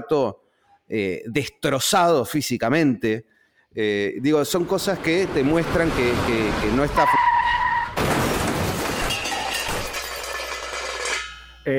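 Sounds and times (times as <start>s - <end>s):
speech: 0.0s - 7.2s
car rear-ended in a collision with crunching metal and shattering debris: 4.5s - 11.6s
brief high tire squeal: 5.9s - 8.0s.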